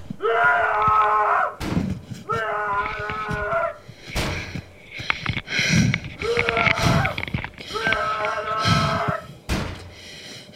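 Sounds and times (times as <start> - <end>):
person shouting and wailing in long strained cries: 0.2 - 1.6, 2.3 - 3.9, 6.2 - 9.3
heavy fists pounding on a hotel room door: 1.6 - 2.1, 8.9 - 9.8.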